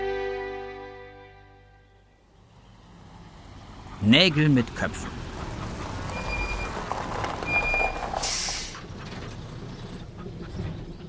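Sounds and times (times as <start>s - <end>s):
large truck engine droning: 0.0s - 11.0s
speech: 4.0s - 5.2s
truck air brakes hissing: 8.0s - 8.9s.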